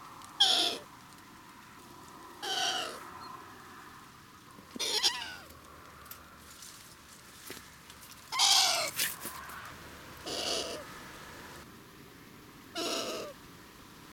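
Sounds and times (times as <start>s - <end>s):
female long-eared owl Asio otus calling: 0.4s - 0.9s, 2.4s - 3.4s, 4.7s - 5.5s, 8.3s - 9.0s, 10.2s - 10.9s, 12.7s - 13.4s.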